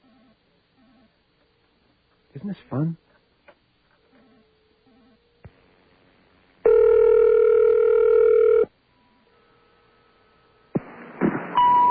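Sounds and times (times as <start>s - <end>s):
faint hum: 0.0s - 11.8s
speech: 2.3s - 3.0s
telephone dial-type tone: 6.6s - 8.7s
noisy telephone line tones: 6.6s - 9.2s.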